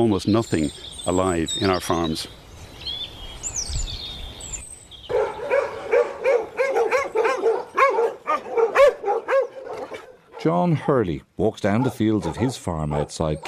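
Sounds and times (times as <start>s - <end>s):
speech: 0.0s - 2.4s, 10.4s - 13.4s
faint birdsong: 0.0s - 10.8s, 11.6s - 13.4s
several dogs barking and yipping at a visitor: 5.1s - 11.0s, 11.6s - 13.4s.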